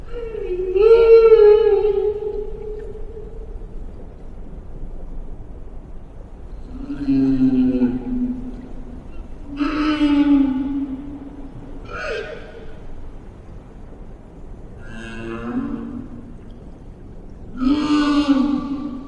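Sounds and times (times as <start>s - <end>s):
whale song in shallow tropical breeding grounds: 0.0s - 4.7s, 5.5s - 19.0s.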